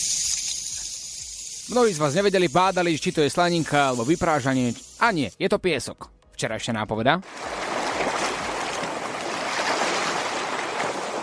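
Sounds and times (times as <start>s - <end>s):
speech: 1.7s - 8.1s
rushing water or sea waves: 7.3s - 11.2s.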